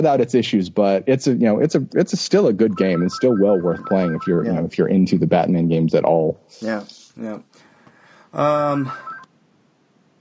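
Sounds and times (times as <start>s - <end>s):
speech: 0.0s - 7.6s, 8.3s - 9.1s
phone ringing with a short electronic tone: 2.7s - 4.6s, 8.9s - 9.3s.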